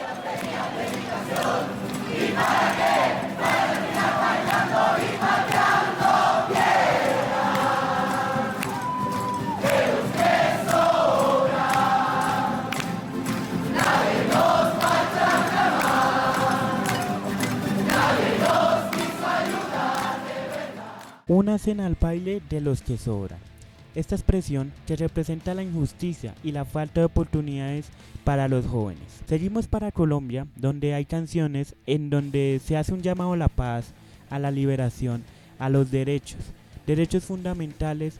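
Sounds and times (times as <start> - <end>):
large outdoor protest crowd singing a rock song: 0.0 - 21.3
speech: 21.4 - 38.1.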